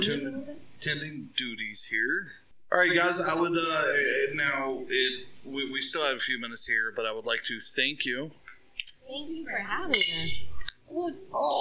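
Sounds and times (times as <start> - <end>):
speech: 0.0 - 11.5
drinking glasses clinking in a toast: 9.9 - 11.0.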